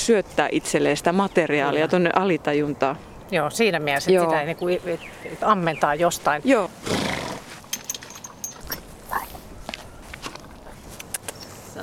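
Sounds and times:
speech: 0.0s - 7.2s
white horse snorting: 6.8s - 7.8s
white horse hooves thudding: 7.3s - 10.6s.

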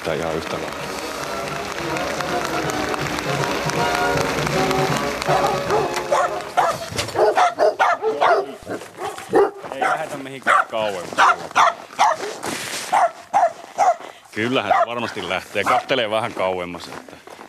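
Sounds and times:
speech: 0.1s - 1.1s, 1.8s - 6.0s, 10.0s - 11.8s, 14.4s - 17.3s
Finnish Hound dog barking: 5.3s - 16.0s.

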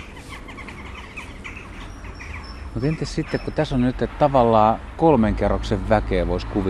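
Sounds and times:
dense flock of jackdaws calling near their roost: 0.0s - 5.1s
speech: 2.8s - 6.6s.

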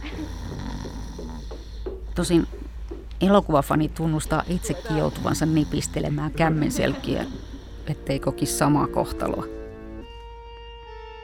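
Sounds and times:
soft snoring: 0.0s - 1.9s, 4.3s - 8.0s
deep slow breathing: 0.0s - 2.8s, 4.3s - 8.1s
steady hum: 0.0s - 10.0s
speech: 2.2s - 2.6s, 3.2s - 9.6s.

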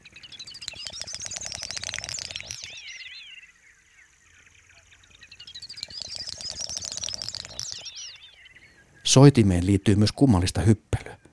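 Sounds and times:
great snipe high rasping twittering calls: 0.0s - 11.3s
great snipe rapid bill-clicking at a lek: 0.5s - 2.8s, 5.8s - 7.9s
speech: 9.2s - 11.0s.

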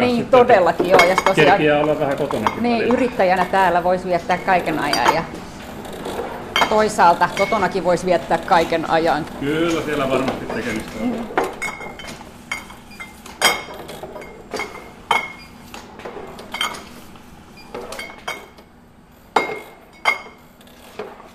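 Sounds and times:
beer bottles clinking in a bottling machine: 0.0s - 5.4s, 6.4s - 8.7s, 9.7s - 15.6s, 16.4s - 17.0s, 17.7s - 18.6s, 19.4s - 20.4s
beer-bottling machine low steady hum: 0.0s - 21.3s
speech: 0.1s - 5.5s, 6.6s - 11.5s.

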